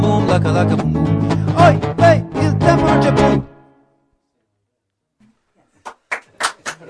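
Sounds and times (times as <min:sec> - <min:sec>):
speech: 0:00.2 - 0:02.4
small group clapping in unison: 0:05.8 - 0:06.8.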